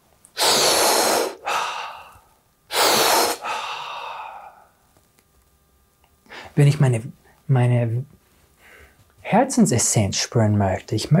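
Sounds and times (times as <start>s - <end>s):
deep breaths during a heart-centred breathing practice: 0.4s - 4.8s, 8.6s - 9.1s
speech: 6.6s - 8.2s, 9.3s - 11.1s.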